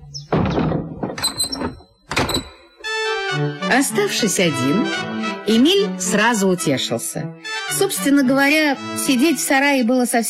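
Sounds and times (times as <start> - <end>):
shed door lock rattling clunks: 0.0 - 2.9
wooden shed door thudding shut: 0.2 - 2.7
speech: 3.7 - 10.2.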